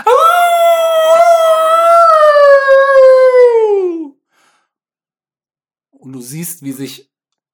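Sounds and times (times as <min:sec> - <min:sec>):
loud wolf howling: 0:00.0 - 0:04.1
speech: 0:06.2 - 0:07.1.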